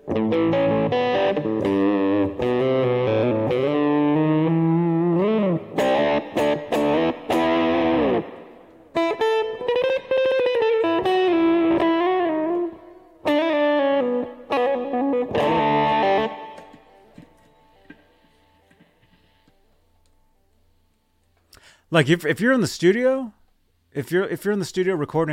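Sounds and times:
distorted electric guitar riff played on bridge pickup: 0.0 - 19.6
speech: 22.0 - 23.4, 24.0 - 25.3.

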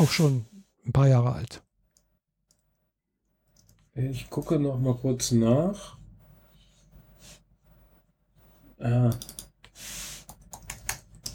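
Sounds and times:
speech: 0.0 - 1.6, 4.0 - 6.0, 8.8 - 10.0
typing on a computer keyboard: 9.1 - 9.6, 10.3 - 11.3.

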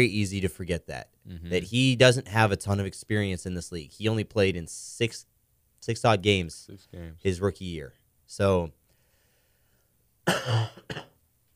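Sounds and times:
speech: 0.0 - 8.8, 10.3 - 11.1
person coughing: 10.3 - 11.2
throat clearing: 10.3 - 11.2.

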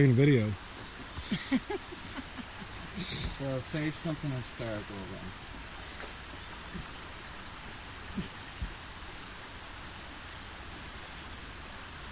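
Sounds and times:
speech: 0.0 - 0.6, 1.3 - 1.8, 3.4 - 5.5
creek water flowing high after lots of rain: 0.0 - 12.0
laughter: 0.7 - 5.1.

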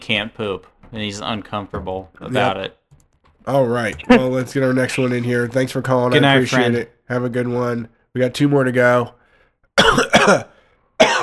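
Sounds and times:
speech: 0.1 - 2.8, 3.4 - 9.2, 9.8 - 11.2
harsh coughs into a microphone: 9.8 - 11.2.

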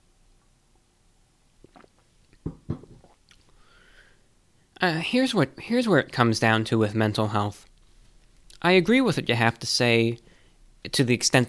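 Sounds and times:
swallowing gulps of water: 1.6 - 3.5
quiet wet mouth noises: 1.6 - 3.6
faint breathy hiss: 3.6 - 4.3
speech: 4.8 - 7.7, 8.6 - 10.2, 10.8 - 11.4.

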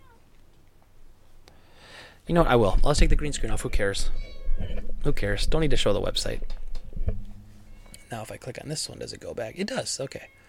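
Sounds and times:
cat meowing: 0.0 - 0.2, 3.3 - 4.9, 7.6 - 8.2
speech: 2.3 - 6.6, 8.1 - 10.4.

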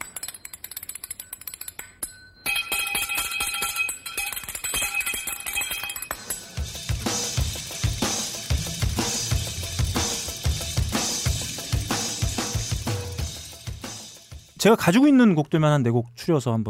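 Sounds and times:
spoons played as percussion clacking: 0.0 - 14.6
heavy drums: 6.5 - 14.8
rock band playing: 6.6 - 14.4
speech: 14.6 - 16.6.

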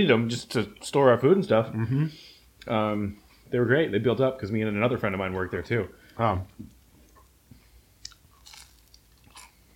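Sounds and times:
speech: 0.0 - 6.8
crunchy food being chewed: 8.0 - 9.7.

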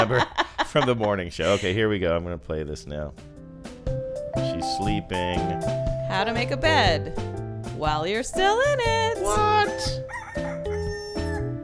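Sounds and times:
laughter: 0.0 - 1.9
speech: 0.0 - 4.0, 4.6 - 10.5
rooster crowing: 10.0 - 11.6.

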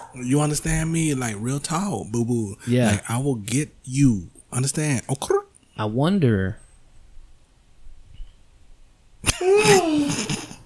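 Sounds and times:
speech: 0.2 - 6.6
person yawning: 9.3 - 10.3.

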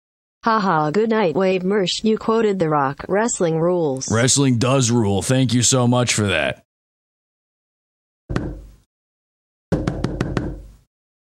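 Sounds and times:
speech: 0.4 - 6.7
knocking on a door: 8.3 - 8.7, 9.7 - 10.8.

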